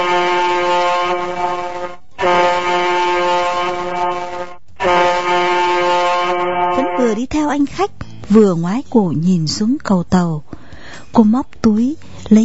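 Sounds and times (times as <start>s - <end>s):
ship's horn blasts: 0.0s - 7.2s
speech: 7.5s - 12.4s.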